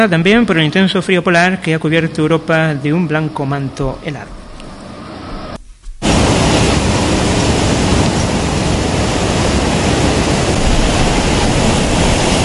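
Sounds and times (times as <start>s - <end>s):
speech: 0.0s - 4.4s
rough sea waves crashing in a cove: 3.2s - 12.4s.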